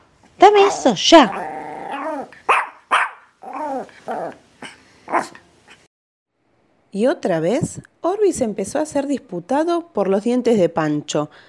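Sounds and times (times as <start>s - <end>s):
speech: 0.4s - 1.5s, 7.0s - 11.4s
dog growling and barking: 0.5s - 5.8s.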